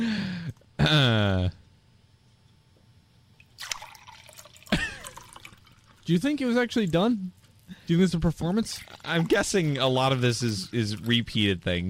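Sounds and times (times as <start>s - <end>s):
speech: 0.8s - 1.6s, 6.1s - 11.8s
liquid pouring and dripping into glasses: 3.4s - 6.1s, 8.7s - 9.8s.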